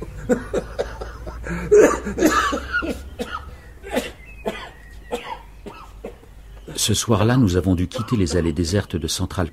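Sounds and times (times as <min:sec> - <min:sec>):
speech: 0:00.0 - 0:00.7, 0:01.5 - 0:02.9, 0:06.9 - 0:09.5
laughter: 0:00.0 - 0:03.1
person in a choking coughing fit: 0:00.8 - 0:06.2.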